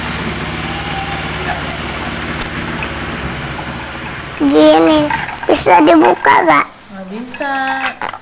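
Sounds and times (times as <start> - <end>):
motorcycle engine droning outside: 0.0 - 6.4
speech: 4.4 - 8.0.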